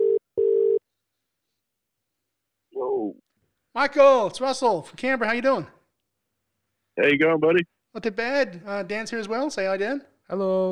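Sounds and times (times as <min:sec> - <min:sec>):
phone ringback tone: 0:00.0 - 0:00.8
speech: 0:03.8 - 0:05.8, 0:07.0 - 0:10.6.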